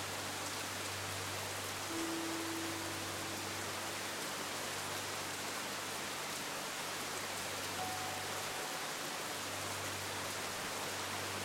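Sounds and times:
hard steady rain: 0.0s - 11.4s
two piano melodies: 1.9s - 4.9s, 7.8s - 9.1s.

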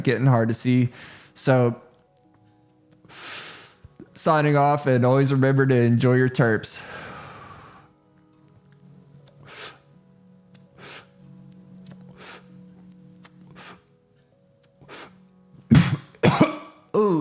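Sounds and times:
speech: 0.0s - 1.8s, 4.2s - 7.0s
rough raspy strained breaths or hacking: 6.8s - 7.9s, 9.4s - 9.9s, 10.7s - 11.2s, 12.1s - 12.6s, 13.4s - 13.9s, 14.8s - 15.2s
loud harsh coughing fit: 15.7s - 16.8s.

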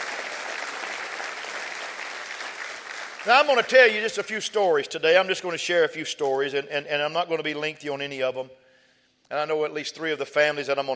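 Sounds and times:
audience clapping hands: 0.0s - 4.0s
speech: 3.2s - 8.6s, 9.3s - 10.9s.

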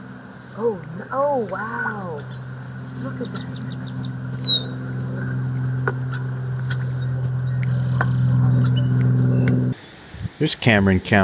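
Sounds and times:
birds chirping and twittering: 0.0s - 9.8s
steady low outdoor rumble: 0.0s - 9.8s
speech: 0.6s - 2.4s, 3.0s - 5.0s, 10.4s - 11.2s.

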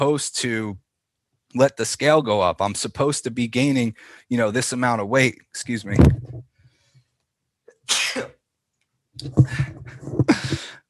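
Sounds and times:
speech: 0.0s - 0.8s, 1.5s - 6.2s, 9.2s - 9.6s
sneezing fit of sharp breathy sneezes: 7.7s - 8.4s, 10.2s - 10.8s.

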